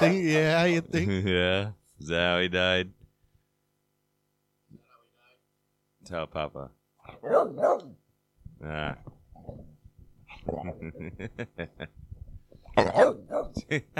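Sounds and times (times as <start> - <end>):
speech: 0.0 - 3.0, 6.1 - 8.0, 8.6 - 9.7, 10.4 - 12.0, 12.8 - 13.9
dog barking in short sharp bursts: 7.2 - 8.0, 12.8 - 13.6.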